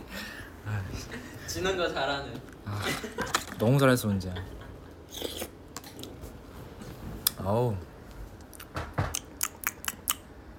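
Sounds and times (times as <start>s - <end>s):
speech: 1.0s - 4.6s, 7.4s - 7.9s
wet mouth smacking from someone chewing: 8.5s - 10.2s.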